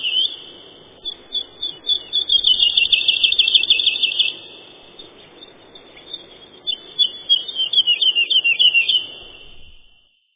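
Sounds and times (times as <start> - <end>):
woodlark Lullula arborea song: 0.0 - 10.3.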